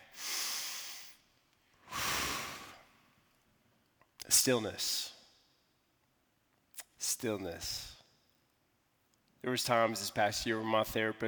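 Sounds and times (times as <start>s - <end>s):
slow deep breathing: 1.8s - 3.0s
speech: 4.3s - 5.1s, 7.2s - 7.9s, 9.4s - 11.2s.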